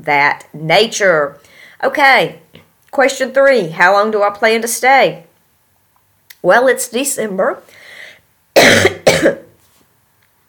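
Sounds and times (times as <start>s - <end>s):
speech: 0.0s - 2.4s, 3.0s - 5.3s, 6.4s - 7.8s, 8.6s - 9.4s
harsh coughs: 8.6s - 9.5s.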